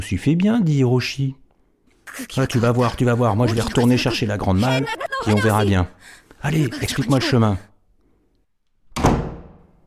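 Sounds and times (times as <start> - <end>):
speech: 0.0 - 1.4, 2.2 - 7.7
laughter: 2.1 - 7.7
door slamming shut: 9.0 - 9.6.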